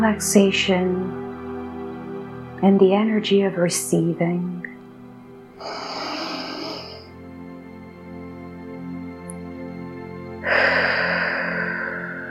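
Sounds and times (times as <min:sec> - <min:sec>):
speech: 0:00.0 - 0:01.2, 0:02.6 - 0:04.7, 0:05.6 - 0:05.9
deep breaths in and out: 0:05.6 - 0:07.1, 0:10.4 - 0:12.3.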